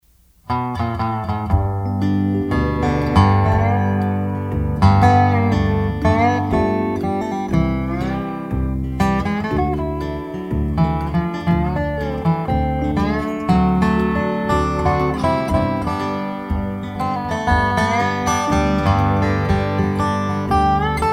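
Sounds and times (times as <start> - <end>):
steel guitar strings in EBDGBD tuning: 0.0 - 21.1.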